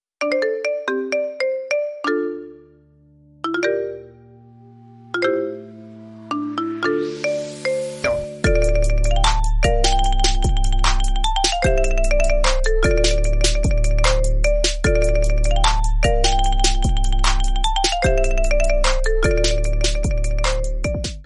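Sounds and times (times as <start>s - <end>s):
marimba mix: 0.2s - 21.2s.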